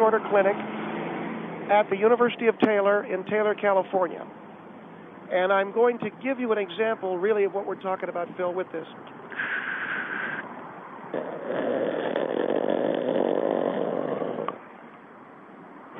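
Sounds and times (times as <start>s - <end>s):
speech: 0.1s - 0.8s, 1.7s - 4.4s, 5.3s - 9.7s
six-month-old infant snoring on a tape recording: 11.1s - 14.6s.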